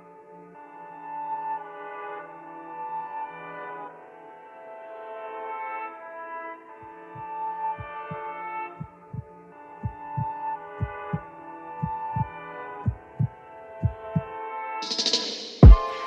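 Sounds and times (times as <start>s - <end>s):
sustained droning musical backing: 0.0s - 16.0s
heartbeat sound effect in a rap song: 7.8s - 8.2s, 8.8s - 9.2s, 9.8s - 11.2s, 11.8s - 14.3s, 15.6s - 15.8s.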